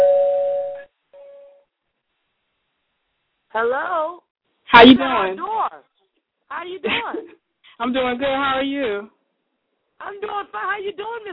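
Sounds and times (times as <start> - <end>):
two-note doorbell chime: 0.0 - 1.6
speech: 3.6 - 5.8, 6.5 - 9.2, 10.0 - 11.3.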